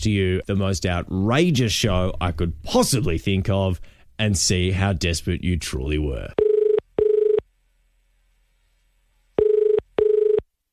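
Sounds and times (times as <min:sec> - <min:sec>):
speech: 0:00.0 - 0:06.4
office phone ringing down the line in a double-ring pattern: 0:09.4 - 0:10.4.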